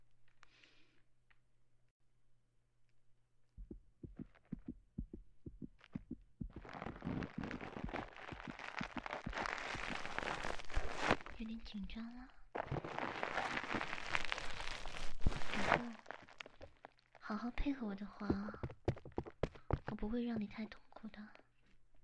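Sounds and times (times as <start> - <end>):
fast heartbeat: 3.6 - 10.1
rushing crackling noise: 6.5 - 11.4, 12.6 - 16.5
speech: 11.5 - 13.0, 17.3 - 18.8, 20.0 - 21.3.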